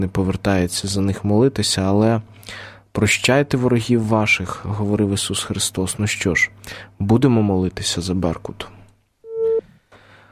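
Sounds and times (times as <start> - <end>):
speech: 0.0 - 8.8
phone busy signal after a dropped call: 9.3 - 9.7.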